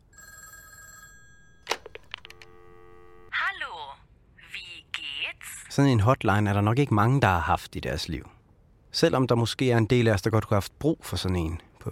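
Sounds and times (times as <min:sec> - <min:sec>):
telephone ringing with an electronic warbling tone: 0:00.0 - 0:03.3
telephone handset clicks and clatters as it is picked up: 0:01.6 - 0:02.5
speech: 0:05.8 - 0:08.4, 0:09.0 - 0:11.9.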